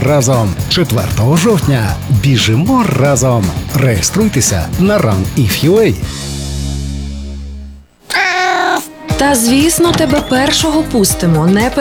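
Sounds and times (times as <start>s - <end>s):
speech: 0.0s - 6.3s, 9.2s - 11.7s
cat meowing: 8.1s - 9.0s.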